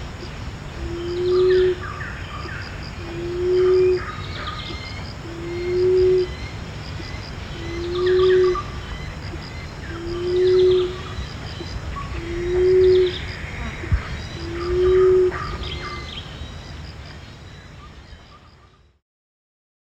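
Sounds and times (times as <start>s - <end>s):
background hum: 0.0s - 19.0s
emerald dove giving low hooting coos at Danum: 0.8s - 1.9s, 3.0s - 6.4s, 7.6s - 16.1s.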